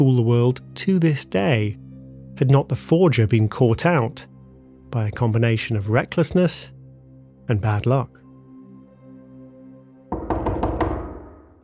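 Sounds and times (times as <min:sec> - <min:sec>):
speech: 0:00.0 - 0:01.8, 0:02.4 - 0:04.3, 0:04.9 - 0:06.8, 0:07.5 - 0:08.2
firm knocks on a door: 0:10.1 - 0:11.6.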